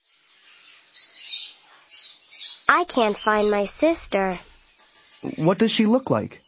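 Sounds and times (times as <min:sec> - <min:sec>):
bird chirping: 0:00.0 - 0:06.4
speech: 0:02.7 - 0:04.5, 0:05.2 - 0:06.4.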